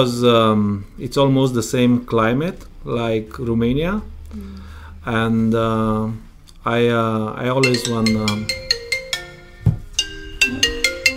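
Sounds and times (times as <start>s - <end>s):
speech: 0.0s - 8.6s
phone ringtone electronic melody: 7.6s - 11.1s.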